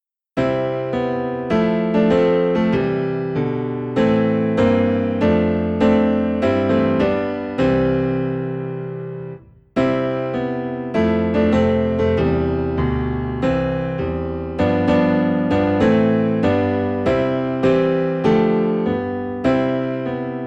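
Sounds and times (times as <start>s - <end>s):
low piano notes in C: 0.4s - 20.4s.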